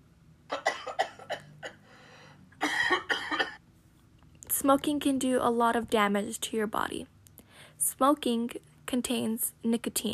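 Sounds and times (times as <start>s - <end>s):
harsh coughing: 0.5s - 1.9s, 2.6s - 3.6s
speech: 4.6s - 7.2s, 8.0s - 10.1s.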